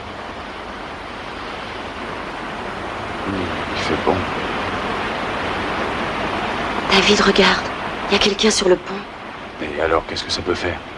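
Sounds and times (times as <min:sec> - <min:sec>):
waves washing at the water's edge: 0:00.0 - 0:10.9
speech: 0:03.3 - 0:04.4, 0:07.0 - 0:09.1, 0:09.8 - 0:10.9.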